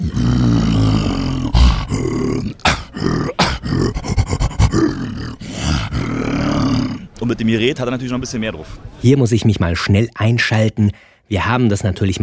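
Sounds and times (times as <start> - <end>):
human voice imitating a monkey roar: 0.0 - 7.1
speech: 7.3 - 12.2.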